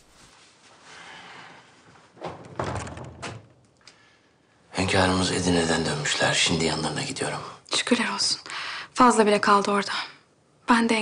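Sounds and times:
faint hiss: 0.0 - 2.6, 3.3 - 11.0
soft knocks of door settling: 2.2 - 3.6
speech: 4.9 - 11.0.

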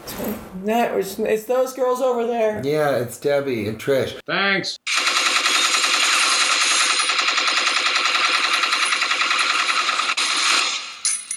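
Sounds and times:
speech: 0.2 - 5.0
rapid automatic gunfire aimed at people: 4.9 - 11.0.

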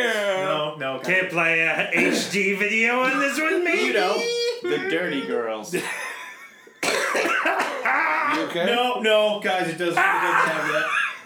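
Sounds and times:
speech: 0.8 - 6.1, 7.1 - 11.2
person coughing harshly: 2.0 - 2.3, 6.8 - 8.6
laughter: 3.0 - 6.8, 10.0 - 11.2.

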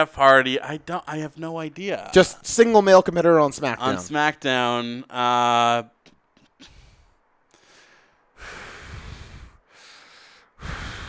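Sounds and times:
speech: 0.0 - 6.0
man breathing heavily into a microphone: 6.6 - 11.0.

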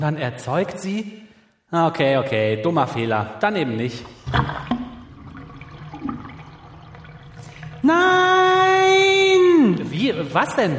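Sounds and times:
speech: 0.0 - 4.8, 7.9 - 8.3, 9.9 - 10.7
water draining with rushing gurgling swirl: 3.8 - 10.0.

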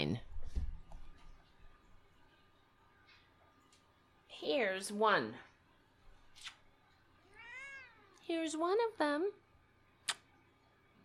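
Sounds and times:
speech: 4.4 - 5.5, 8.3 - 9.4
cat giving a soft drawn-out meow: 7.2 - 8.2.

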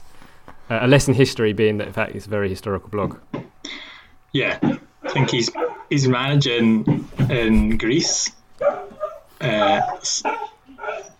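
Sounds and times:
speech: 0.7 - 3.3, 4.3 - 8.4, 9.4 - 10.4
dog barking: 4.6 - 6.0, 8.1 - 11.1.

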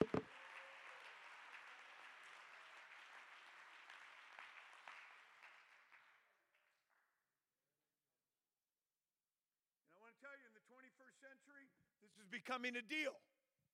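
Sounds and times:
audience clapping hands in praise: 0.0 - 6.8
speech: 10.1 - 13.3.

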